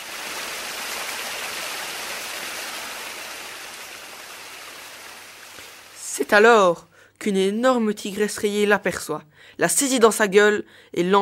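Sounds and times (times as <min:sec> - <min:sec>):
river water rushing: 0:00.0 - 0:06.0
speech: 0:06.2 - 0:11.2.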